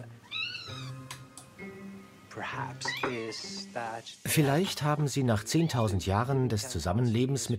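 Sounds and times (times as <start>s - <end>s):
cat meowing: 0.2s - 1.1s, 2.8s - 3.5s
speech: 2.4s - 7.5s.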